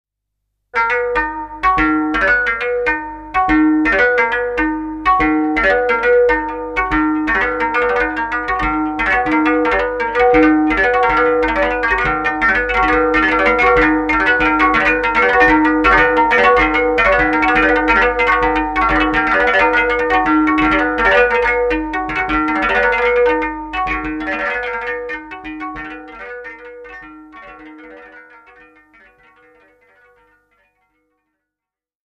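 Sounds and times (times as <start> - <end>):
koto type instruments: 0.8 - 30.6.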